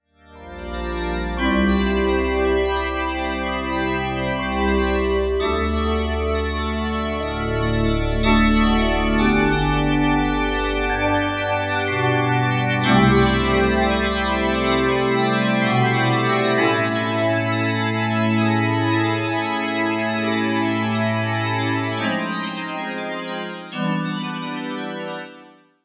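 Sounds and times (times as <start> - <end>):
Korg M1 Magic Organ synthesizer sound: 0.2 - 25.6.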